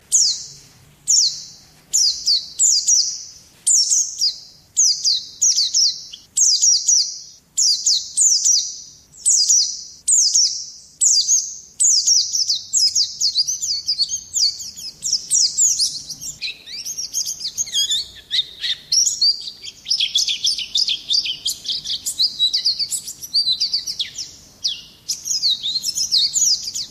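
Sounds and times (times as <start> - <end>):
white-eye giving high thin downslurred notes: 0.1 - 26.8.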